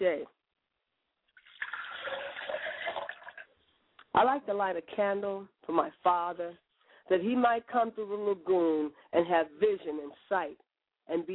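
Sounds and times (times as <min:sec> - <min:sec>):
liquid poured out as a libation: 0:01.3 - 0:03.6
speech: 0:04.2 - 0:11.3.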